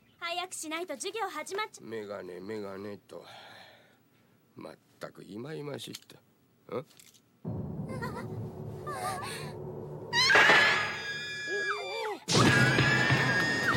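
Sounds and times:
quieter noise: 0:00.0 - 0:13.7
speech: 0:00.4 - 0:03.5, 0:04.6 - 0:07.6, 0:08.9 - 0:09.6
woman screaming: 0:10.2 - 0:13.7.

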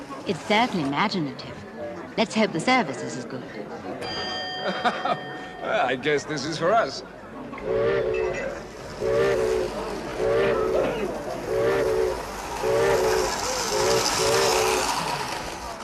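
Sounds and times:
speech: 0:00.3 - 0:01.6, 0:02.2 - 0:08.4, 0:09.0 - 0:09.4
laughter: 0:04.5 - 0:05.7
train steam whistle tooting: 0:07.6 - 0:14.9
train arriving rumbling and hissing: 0:07.6 - 0:15.8.

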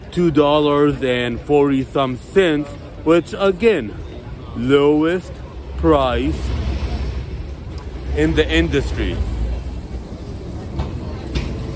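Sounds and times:
general street noise: 0:00.0 - 0:11.7
speech: 0:00.2 - 0:06.6, 0:08.2 - 0:09.3
Soviet-era tram rumbling past: 0:04.2 - 0:11.7
tram wheels clanking on the rails: 0:06.4 - 0:11.7.

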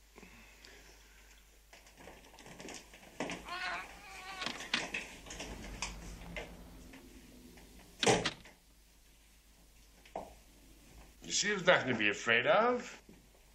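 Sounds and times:
faint rustling: 0:00.5 - 0:12.1
cat meowing: 0:03.3 - 0:06.4
door opening with a sharp clunk: 0:03.8 - 0:08.6
speech: 0:11.4 - 0:13.0.

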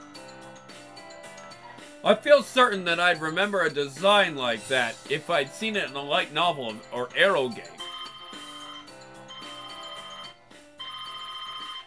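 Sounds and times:
speech: 0:02.0 - 0:07.8
mobile phone ringtone with bright melodic electronic tune: 0:07.2 - 0:11.8
mobile phone vibrating: 0:07.8 - 0:11.8.

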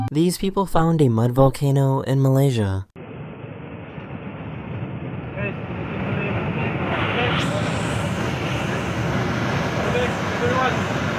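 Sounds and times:
speech: 0:00.2 - 0:02.9
airplane cabin roar in flight: 0:03.0 - 0:11.1.

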